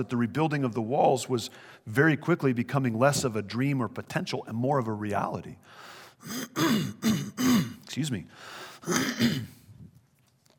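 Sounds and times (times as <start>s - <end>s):
speech: 0.0s - 9.6s
cough into an elbow: 6.2s - 7.8s, 8.8s - 9.7s.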